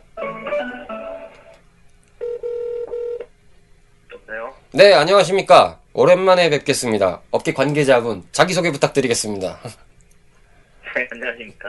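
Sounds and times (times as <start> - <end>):
buzzy telephone ringing tone on the line: 2.2 - 3.2
speech: 4.7 - 9.8, 10.9 - 11.6.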